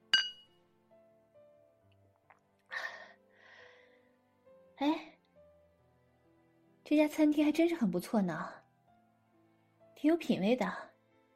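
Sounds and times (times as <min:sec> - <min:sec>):
two glasses clinking in a toast at a restaurant: 0:00.2 - 0:00.4
speech: 0:04.8 - 0:05.0, 0:06.9 - 0:08.6, 0:10.0 - 0:10.9.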